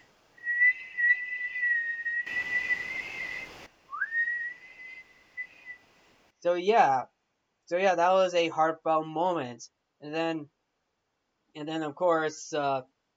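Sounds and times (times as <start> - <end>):
high whistled note: 0.4 - 5.8
rushing noise: 2.2 - 5.9
speech: 6.4 - 7.1, 7.7 - 10.6, 11.6 - 12.9.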